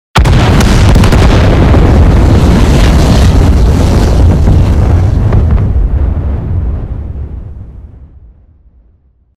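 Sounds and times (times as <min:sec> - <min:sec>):
explosion: 0:00.2 - 0:09.3.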